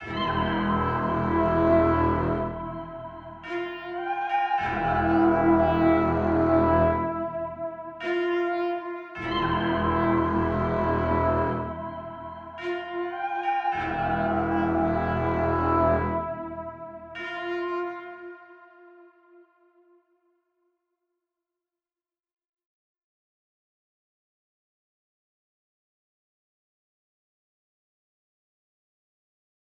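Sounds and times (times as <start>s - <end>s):
sinister music loop in E minor at 105 bpm: 0.0s - 17.5s.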